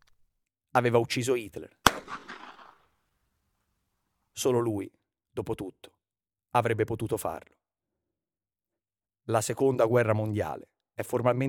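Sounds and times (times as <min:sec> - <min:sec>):
speech: 0:00.8 - 0:02.2, 0:04.4 - 0:05.9, 0:06.5 - 0:07.6, 0:09.3 - 0:11.4
single pistol gunshot: 0:01.8 - 0:02.9.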